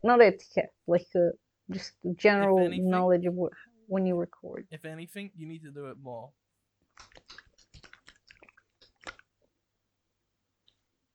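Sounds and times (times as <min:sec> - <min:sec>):
speech: 0:00.0 - 0:06.4
person gulping a drink: 0:06.9 - 0:09.4.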